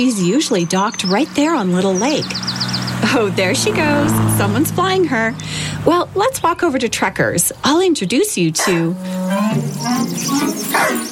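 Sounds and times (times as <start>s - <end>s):
speech: 0.0s - 11.1s
Australian Shepherd dog barking with yips and whining: 10.1s - 11.1s.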